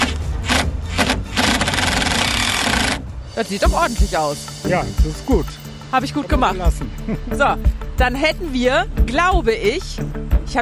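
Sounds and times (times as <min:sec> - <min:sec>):
cordless screwdriver driving in screws: 0:00.0 - 0:03.0
speech: 0:03.4 - 0:10.5.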